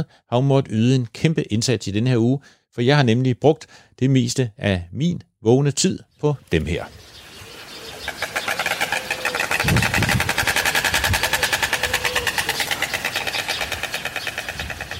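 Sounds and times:
speech: 0:00.0 - 0:07.1
storks clattering their bills at a stork nest on a farm: 0:06.7 - 0:14.9.

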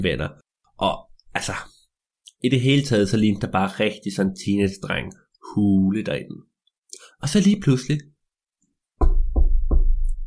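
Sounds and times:
speech: 0:00.0 - 0:01.7, 0:02.4 - 0:06.5, 0:07.2 - 0:08.1
father knocking on a teenage son's door: 0:09.0 - 0:10.2.

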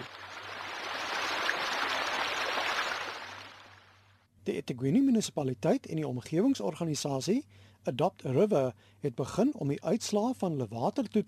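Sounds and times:
stream flowing from a broken pump station into a river: 0:00.0 - 0:03.9
speech: 0:04.5 - 0:11.2.

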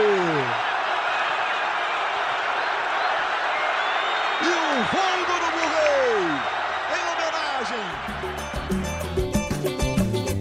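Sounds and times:
stadium football crowd cheering and shouting a title win: 0:00.0 - 0:09.6.

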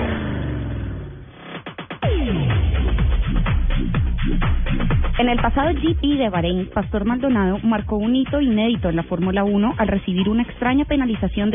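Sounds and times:
loud engine roaring and revving: 0:00.0 - 0:04.7
speech: 0:05.2 - 0:11.5.

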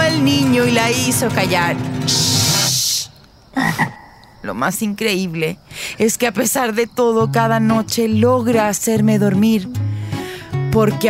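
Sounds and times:
frog croaking: 0:00.0 - 0:08.1
speech: 0:00.2 - 0:02.3, 0:03.6 - 0:09.9, 0:10.8 - 0:11.0.

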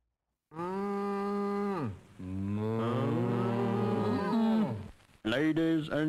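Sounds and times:
speech: 0:00.5 - 0:00.7, 0:05.3 - 0:06.0
cow mooing: 0:00.5 - 0:04.8.

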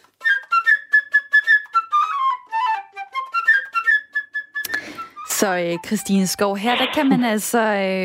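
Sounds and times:
flute playing bird-like melody of short trilled notes in an orchestral tale: 0:00.1 - 0:06.0
speech: 0:05.4 - 0:08.0.

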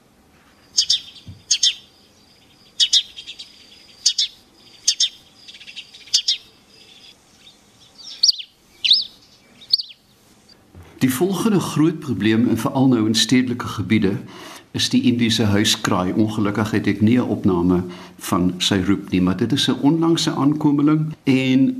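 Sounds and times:
faint hum: 0:00.0 - 0:21.7
house sparrow chirping: 0:00.6 - 0:10.6
speech: 0:11.0 - 0:21.7.

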